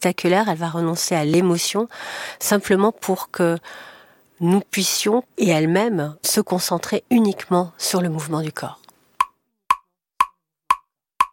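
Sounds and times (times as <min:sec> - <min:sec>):
speech: 0:00.0 - 0:08.8
metronome ticking for dancers in a choreographic piece: 0:09.2 - 0:11.3.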